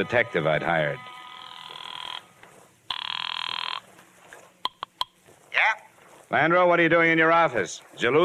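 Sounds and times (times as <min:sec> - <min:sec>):
speech: 0:00.0 - 0:01.1, 0:06.3 - 0:08.2
telephone bell ringing: 0:00.0 - 0:02.3, 0:02.9 - 0:03.8.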